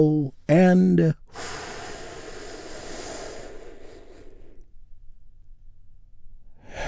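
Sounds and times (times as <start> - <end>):
speech: 0.0 - 1.6
deep breath drawn in and released during a guided relaxation: 1.3 - 5.1, 6.5 - 6.8.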